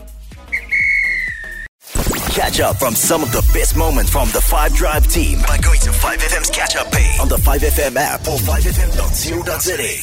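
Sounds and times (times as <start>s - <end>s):
referee's whistle blown to end the match: 0.5s - 1.7s
speech: 2.4s - 10.0s.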